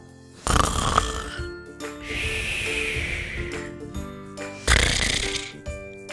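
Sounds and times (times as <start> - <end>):
sleeping wolf snoring: 0.4 - 6.0.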